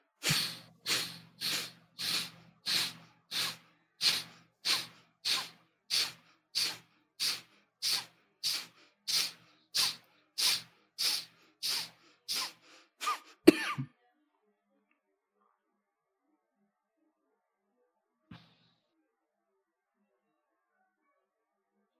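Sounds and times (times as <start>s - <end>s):
rapid forceful breathing in a deep breathing exercise: 0.1s - 13.5s.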